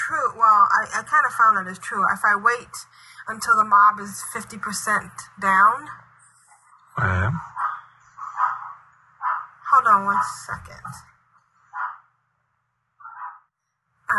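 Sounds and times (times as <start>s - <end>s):
speech: 0.1s - 6.0s, 7.0s - 7.5s, 9.8s - 11.1s
dogs barking in short sharp bursts: 7.4s - 10.4s, 11.7s - 12.1s, 13.0s - 13.5s.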